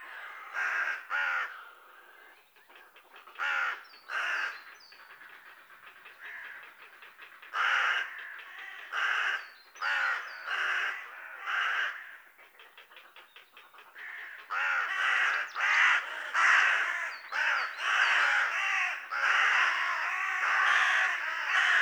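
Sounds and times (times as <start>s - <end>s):
Carrion crow cawing: 0.0s - 1.8s, 3.4s - 4.5s, 7.6s - 12.2s, 14.0s - 21.8s.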